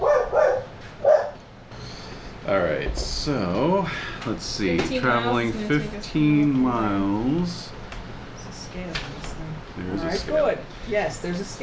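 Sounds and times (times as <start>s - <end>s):
dogs barking: 0.0s - 1.5s
speech: 2.5s - 7.8s, 9.8s - 11.6s.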